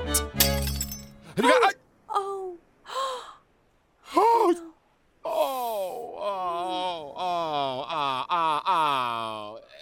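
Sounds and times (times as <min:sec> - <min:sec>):
crystal glass breaking: 0:00.1 - 0:01.2
person moaning and wailing: 0:04.2 - 0:09.8.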